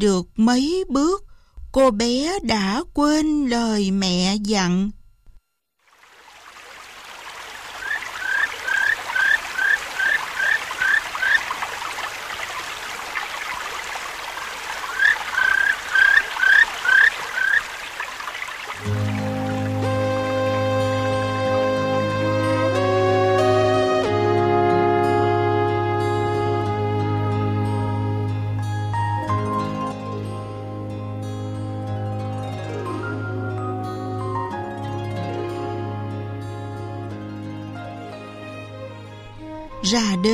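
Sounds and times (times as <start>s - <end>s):
speech: 0.0s - 5.0s
babbling forest stream: 5.9s - 20.3s
birds chirping rapidly: 7.3s - 19.7s
music: 18.8s - 40.3s.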